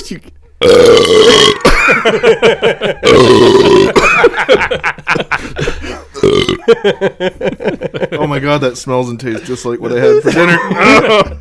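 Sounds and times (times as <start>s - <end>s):
speech: 0.1s - 4.9s, 6.7s - 11.3s
loud burp after drinking Sprite: 0.6s - 2.1s, 3.0s - 4.3s, 6.1s - 6.7s
laughter: 1.6s - 11.3s.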